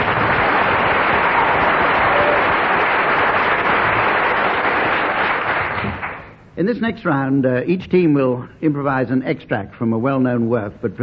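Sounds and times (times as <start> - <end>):
large audience applauding a member of a performing quartet: 0.0 - 6.3
speech: 6.6 - 11.0.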